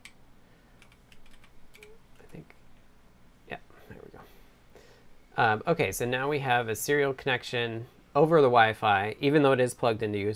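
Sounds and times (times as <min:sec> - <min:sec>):
low steady hum: 0:00.0 - 0:10.3
computer keyboard keys tapped while typing a password: 0:00.8 - 0:02.4
speech: 0:05.4 - 0:10.3.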